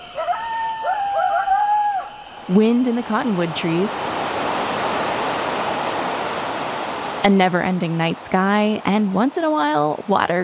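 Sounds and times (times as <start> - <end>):
desert coyotes howling: 0.0 - 7.3
speech: 2.5 - 4.2, 7.2 - 10.4.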